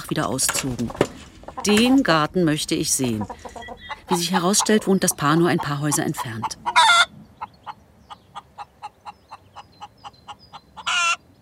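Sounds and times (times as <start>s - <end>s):
speech: 0.1s - 6.8s
hen cackling after laying an egg: 3.0s - 11.2s.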